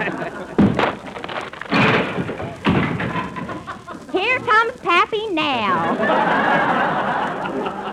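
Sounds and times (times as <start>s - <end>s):
laughter: 0.0s - 1.3s, 3.0s - 4.4s, 5.7s - 7.9s
knocking bumps: 0.0s - 5.2s
rough rain-like hiss: 0.0s - 7.9s
door slamming shut with a heavy thud: 0.6s - 3.7s.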